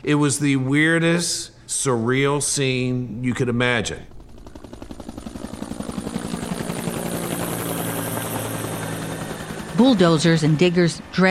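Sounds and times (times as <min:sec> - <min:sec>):
speech: 0:00.0 - 0:04.2, 0:09.8 - 0:11.3
helicopter flying overhead with rotor blades chopping: 0:03.2 - 0:11.3.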